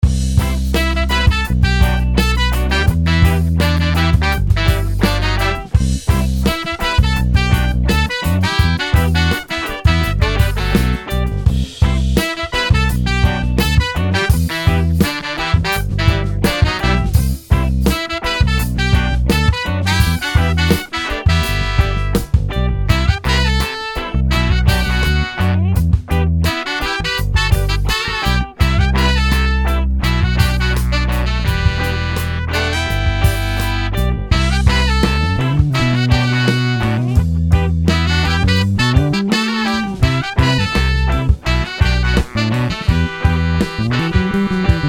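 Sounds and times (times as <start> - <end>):
funk soul ensemble playing: 0.0 - 44.8.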